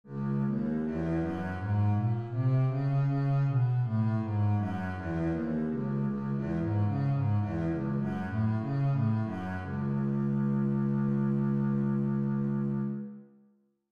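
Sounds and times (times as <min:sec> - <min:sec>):
bass playing scales in C sharp minor: 0:00.1 - 0:13.1.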